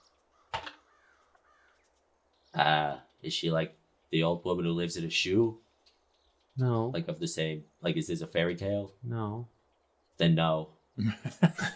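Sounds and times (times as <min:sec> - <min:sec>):
raven cawing harshly: 0:00.3 - 0:02.0
speech: 0:02.6 - 0:05.6, 0:06.6 - 0:09.6, 0:10.2 - 0:11.7
laughter: 0:11.0 - 0:11.7.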